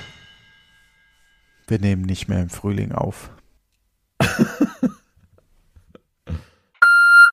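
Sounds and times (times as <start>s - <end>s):
speech: 1.7s - 3.4s
laughter: 4.2s - 5.0s
answering machine electronic beep: 6.8s - 7.2s.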